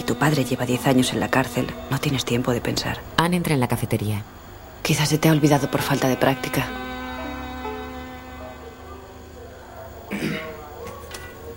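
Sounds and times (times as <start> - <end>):
steady low hum: 0.0 - 11.5
speech: 0.1 - 6.8
man clearing his throat in a café: 10.1 - 10.7.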